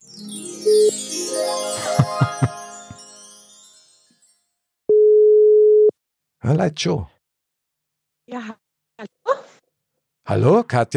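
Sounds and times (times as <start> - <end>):
bell-like electronic jingle: 0.0 - 4.6
steady loud telephone ringback tone: 0.7 - 0.9, 4.9 - 5.9
laughter: 1.8 - 2.7
speech: 6.5 - 7.2, 10.3 - 10.9.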